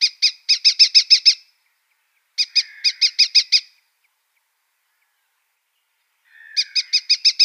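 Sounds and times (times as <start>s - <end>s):
Red-footed falcon chattering calls: 0.0s - 1.4s, 2.4s - 3.7s, 6.3s - 7.4s.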